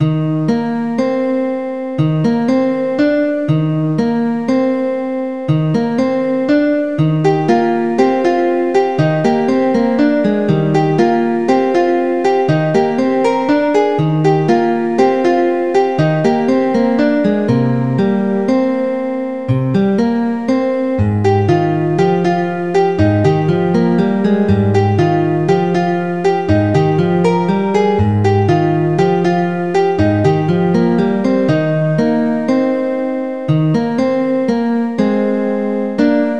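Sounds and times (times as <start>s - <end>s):
relaxing guitar: 0.0s - 36.3s
chiptune music: 7.0s - 34.1s.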